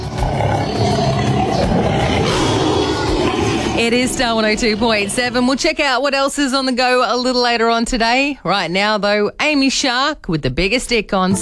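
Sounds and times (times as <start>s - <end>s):
deep gravelly tiger roar: 0.0s - 5.8s
speech: 3.9s - 11.4s.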